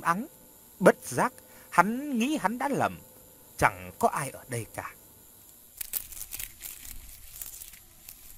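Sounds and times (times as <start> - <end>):
speech: 0.0 - 5.0
rustling among plants in a frangipani garden: 5.8 - 8.3.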